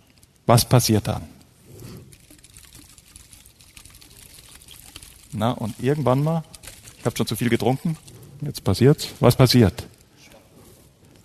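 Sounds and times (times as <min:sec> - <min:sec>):
speech: 0:00.5 - 0:01.4, 0:05.4 - 0:09.9
water sloshing and spattering out of a shaken bottle: 0:01.4 - 0:10.1.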